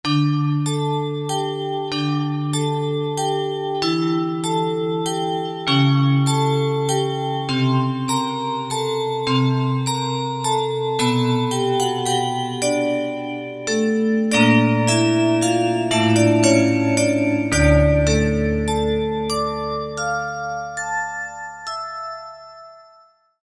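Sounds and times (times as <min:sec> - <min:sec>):
chime bells: 0:00.5 - 0:23.4.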